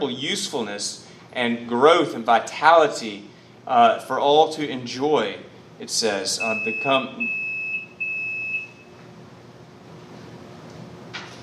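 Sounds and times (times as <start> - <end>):
speech: 0.0 - 7.4
scooter high-pitched electronic beep: 6.4 - 8.9.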